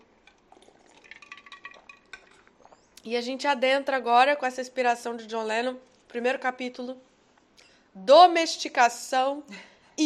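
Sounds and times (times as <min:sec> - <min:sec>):
person sipping a drink: 0:00.2 - 0:03.0
ice cubes clinking against a glass of drink: 0:00.6 - 0:02.5
speech: 0:03.0 - 0:07.1, 0:08.0 - 0:10.0.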